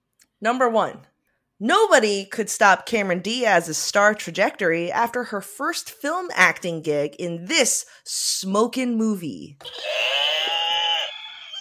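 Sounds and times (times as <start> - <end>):
speech: 0.4 - 10.2
barnyard animal buzzer sound effect bleating: 9.6 - 11.5.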